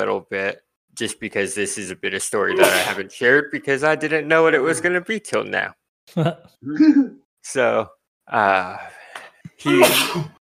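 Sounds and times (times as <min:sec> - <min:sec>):
speech: 0:00.0 - 0:09.0, 0:09.6 - 0:10.4
sneeze: 0:02.5 - 0:03.0, 0:09.6 - 0:10.4.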